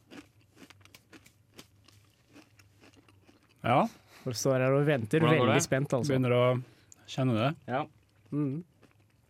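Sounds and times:
wet chewing with sharp crunches: 0.0s - 4.2s, 6.8s - 9.2s
speech: 3.6s - 8.7s
low steady hum: 4.7s - 9.2s.

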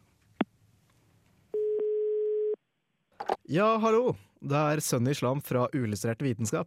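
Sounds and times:
buzzing telephone ringing tone over a phone line on a taped call: 1.6s - 2.6s
speech: 3.2s - 6.6s.

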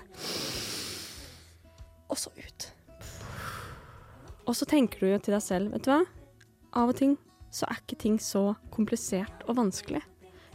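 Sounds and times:
person taking a long deep breath in: 0.0s - 1.6s, 3.0s - 4.4s
speech: 4.5s - 6.2s, 6.8s - 10.1s.

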